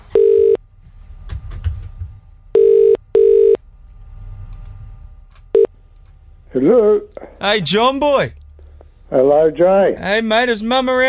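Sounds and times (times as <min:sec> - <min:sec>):
telephone line ringing with loud buzzy electronic tones: 0:00.1 - 0:00.6, 0:02.5 - 0:03.6, 0:05.5 - 0:05.7
speech: 0:06.6 - 0:08.4, 0:09.1 - 0:11.0.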